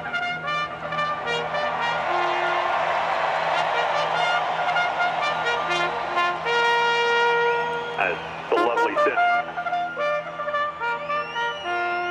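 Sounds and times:
bugle playing a call at a horse race: 0.0 - 12.0
murmur of crowd noise at a horse race: 1.2 - 6.8, 7.8 - 9.9.

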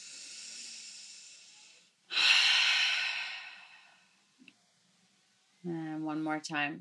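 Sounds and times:
deep breath inhaled through the nose and exhaled through the mouth: 0.0 - 4.3
speech: 5.6 - 6.8.

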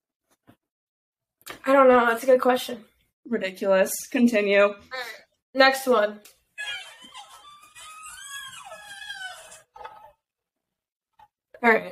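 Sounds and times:
speech: 1.6 - 6.4, 11.6 - 11.9
monkey squealing: 6.6 - 10.2.

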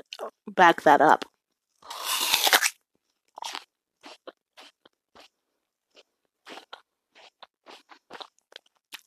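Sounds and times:
speech: 0.1 - 1.3
biting into an apple: 1.8 - 5.3, 5.9 - 9.0.

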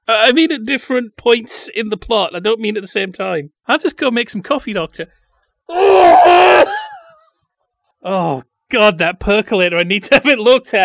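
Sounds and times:
speech: 0.1 - 6.9, 8.0 - 10.8
woman screaming: 5.7 - 7.2.

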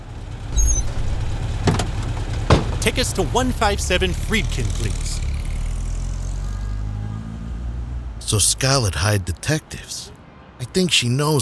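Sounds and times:
car engine rumbling low and steady: 0.0 - 10.8
taxi cab rolling to a stop: 0.2 - 7.0
short high brake squeal: 0.4 - 7.6
speech: 2.8 - 5.2, 8.3 - 11.4.

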